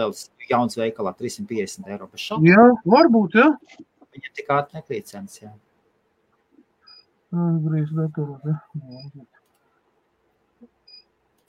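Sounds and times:
speech: 0.0s - 5.7s, 7.3s - 9.4s
faint high electronic beep: 10.8s - 11.1s.

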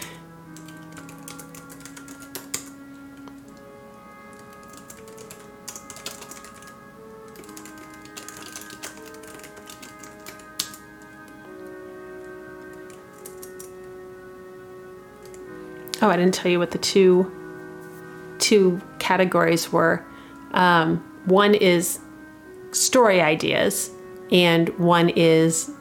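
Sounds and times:
soft sustained musical drone: 0.0s - 25.7s
fingers typing on a computer keyboard: 0.6s - 2.8s, 4.3s - 11.3s, 12.6s - 13.7s
speech: 16.0s - 17.4s, 18.5s - 22.0s, 22.8s - 25.7s.

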